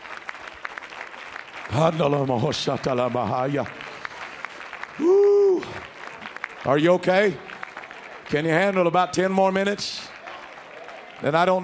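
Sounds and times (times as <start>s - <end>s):
church audience clapping hands: 0.0s - 11.6s
speech: 1.7s - 3.8s, 6.6s - 7.5s, 8.3s - 10.1s, 11.2s - 11.6s
drawn-out vocal exclamation: 5.0s - 5.8s.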